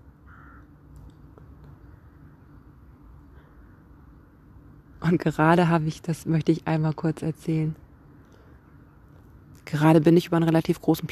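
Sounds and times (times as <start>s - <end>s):
steady low outdoor rumble: 0.0s - 11.0s
crows cawing while flying to roost: 0.3s - 0.8s
speech: 5.1s - 7.8s, 9.7s - 11.0s.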